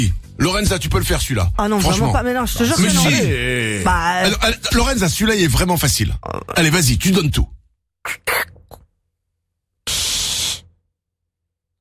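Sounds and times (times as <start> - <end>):
speech: 0.0 - 8.4
person's mouth clicks and pops imitating a soda bottle opening: 8.0 - 9.0, 9.9 - 10.7
person's breathy mouth hiss imitating soda fizz: 8.1 - 8.7, 9.9 - 10.8.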